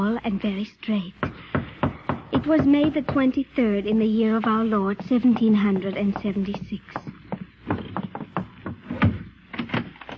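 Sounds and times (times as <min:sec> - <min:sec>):
speech: 0:00.0 - 0:01.3, 0:02.4 - 0:07.0
knocking on the wooden door of a new house in Philadelphia: 0:01.2 - 0:03.4, 0:04.6 - 0:09.3.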